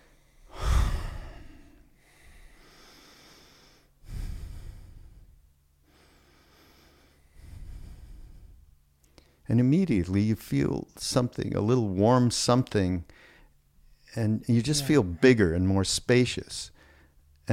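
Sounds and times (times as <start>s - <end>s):
deep slow breaths taken in focused relaxation: 0.0s - 9.5s, 13.1s - 14.1s, 16.7s - 17.3s
speech: 9.5s - 13.2s, 14.1s - 16.8s.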